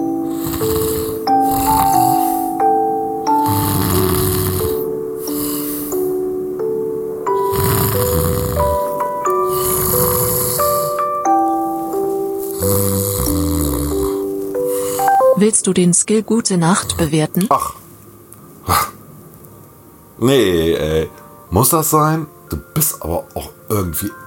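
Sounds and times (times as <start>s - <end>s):
low rasping snores while asleep: 0.0s - 2.7s, 3.3s - 6.1s, 7.3s - 11.1s, 12.4s - 15.1s
soft melodic music: 0.0s - 24.2s
speech: 15.6s - 17.8s, 20.2s - 24.2s.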